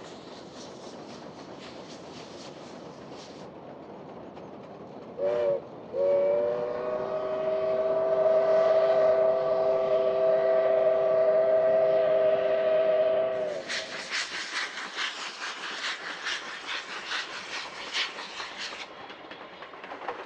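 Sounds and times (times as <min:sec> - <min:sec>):
bursts of hissing steam from a steam locomotive: 0:00.0 - 0:04.0, 0:05.1 - 0:20.2
steam locomotive whistle on a main line: 0:05.2 - 0:13.6.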